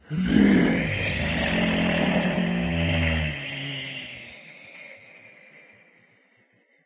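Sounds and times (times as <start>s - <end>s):
groaning on a beach: 0.0s - 4.5s.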